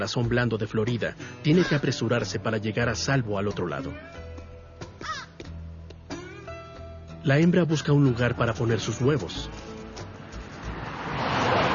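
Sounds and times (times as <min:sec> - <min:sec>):
speech: 0:00.0 - 0:04.2, 0:07.2 - 0:09.6
hungry crow cawing by a roadside in a national park in Florida: 0:05.0 - 0:05.4.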